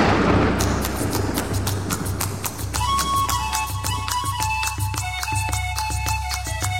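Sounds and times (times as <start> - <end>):
constant low rumble: 0.0 - 2.8
horse hooves clip-clopping: 0.4 - 6.7.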